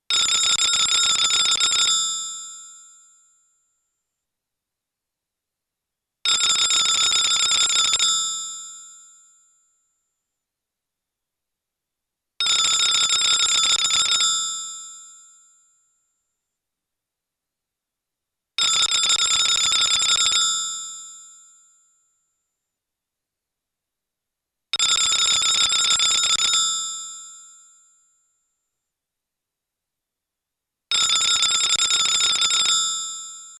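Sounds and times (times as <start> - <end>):
old British telephone: 0.1 - 2.5, 6.3 - 8.7, 12.4 - 15.2, 18.6 - 20.9, 24.8 - 27.6, 30.9 - 33.5.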